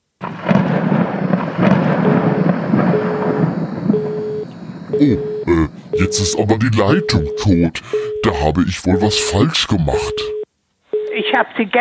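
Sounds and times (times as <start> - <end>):
continuous deep rumbling thunder of a loud thunderstorm: 0.2 - 5.9
speech: 5.0 - 5.3, 6.1 - 10.4, 11.2 - 11.7.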